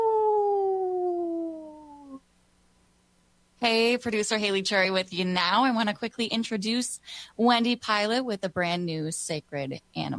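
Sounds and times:
wolf howling: 0.0 - 2.2
speech: 3.6 - 10.1.

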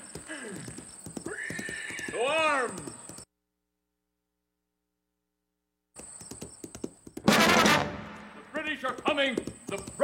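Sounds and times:
horse hooves clattering: 0.0 - 3.3, 6.0 - 7.7, 8.4 - 10.0
horse whinnying: 0.7 - 3.0
speech: 2.1 - 2.9, 8.8 - 10.0.

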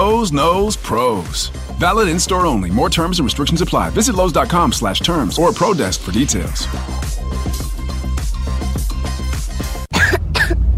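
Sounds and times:
upbeat music: 0.0 - 10.6
speech: 0.2 - 7.6
child coughing: 9.9 - 10.6.

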